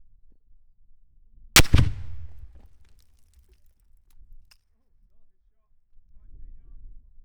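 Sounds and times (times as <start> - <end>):
L109A1 HE grenade explosions: 1.6 - 2.6.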